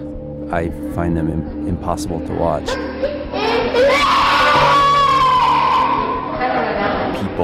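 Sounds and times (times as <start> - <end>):
speech: 0.5 - 3.1
agitated cries: 2.8 - 6.4
people screaming in rage spasms: 3.4 - 6.6.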